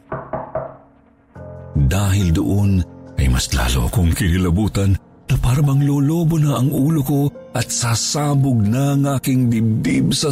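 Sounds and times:
soft knocks on a door: 0.0 - 0.9
speech: 1.8 - 10.3.

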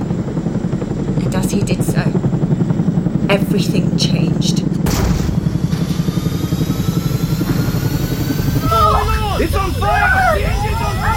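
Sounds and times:
helicopter engine and rotors: 0.0 - 11.1
speech: 3.3 - 4.7, 9.4 - 11.1.

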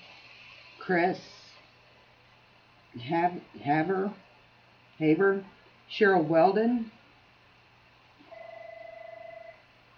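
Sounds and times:
low quiet hum: 0.0 - 9.9
speech: 0.9 - 1.4, 2.9 - 4.3, 5.0 - 7.0
telephone ringing: 8.3 - 9.6.

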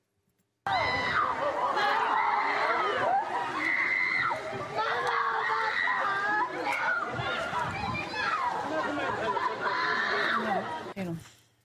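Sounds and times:
children screaming and shouting during an apartment fire near Metz in Moselle France: 0.7 - 10.9
laughter: 1.0 - 3.8, 8.4 - 10.9.

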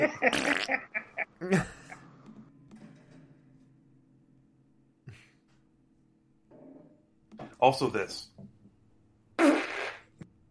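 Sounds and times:
speech: 0.0 - 1.8, 7.6 - 8.4
fart: 0.3 - 0.7, 9.4 - 10.3.

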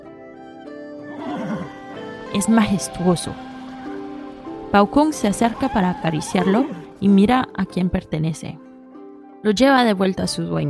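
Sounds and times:
horse whinnying in a shaky trilling neigh: 1.0 - 7.1
speech: 2.3 - 3.5, 4.7 - 8.6, 9.4 - 10.6.

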